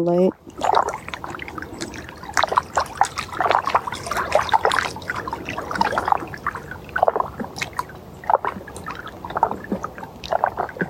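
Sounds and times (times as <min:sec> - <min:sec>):
speech: 0:00.0 - 0:00.8
lake water trickling and lapping: 0:00.0 - 0:10.8.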